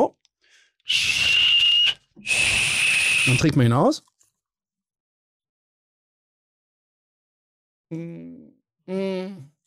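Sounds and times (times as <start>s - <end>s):
speech: 0.8s - 1.4s, 3.3s - 4.1s, 7.9s - 9.5s
person whistling at a herbal liqueur bottle: 0.9s - 3.4s.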